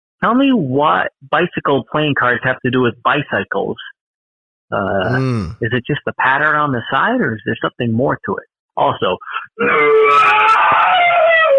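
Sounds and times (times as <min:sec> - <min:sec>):
speech: 0:00.2 - 0:04.0, 0:04.7 - 0:10.5
person letting out an industrial-style scream: 0:05.1 - 0:05.6.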